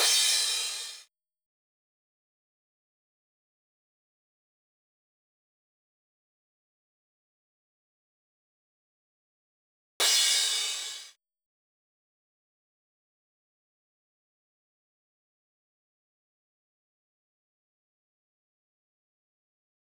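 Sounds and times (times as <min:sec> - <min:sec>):
crash cymbal pattern: 0:00.0 - 0:01.1, 0:10.0 - 0:11.2.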